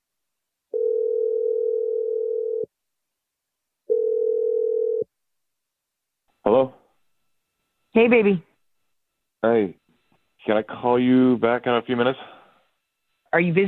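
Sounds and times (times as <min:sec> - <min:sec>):
long steady telephone ringing tones: 0:00.7 - 0:02.7, 0:03.9 - 0:05.1
speech: 0:08.0 - 0:08.5, 0:09.4 - 0:09.8, 0:10.4 - 0:12.3, 0:13.3 - 0:13.6.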